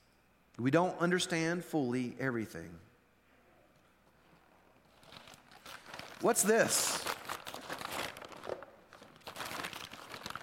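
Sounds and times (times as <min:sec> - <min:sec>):
speech: 0:00.6 - 0:02.9, 0:06.2 - 0:07.1
dingy paper bag crinkling and rustling as it is handled: 0:04.9 - 0:10.4.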